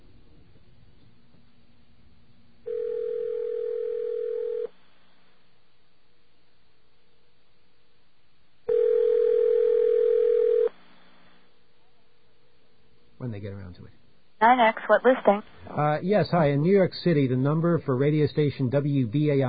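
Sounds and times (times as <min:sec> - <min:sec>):
landline telephone dial tone: 0:02.7 - 0:04.7, 0:08.7 - 0:10.7
speech: 0:13.8 - 0:19.4.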